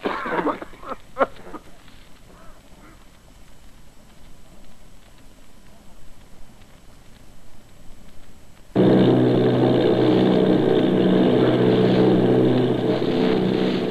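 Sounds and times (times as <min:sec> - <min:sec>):
faint low rumble: 0:00.0 - 0:13.8
propeller engines of Army bombers droning off Bayonne New Jersey: 0:08.8 - 0:13.8.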